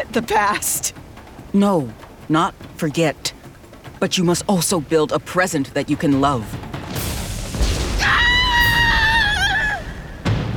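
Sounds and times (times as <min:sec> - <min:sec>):
steady rumbling background: 0:00.0 - 0:10.5
speech: 0:00.1 - 0:03.4, 0:04.0 - 0:07.0
woman screaming: 0:08.0 - 0:10.2.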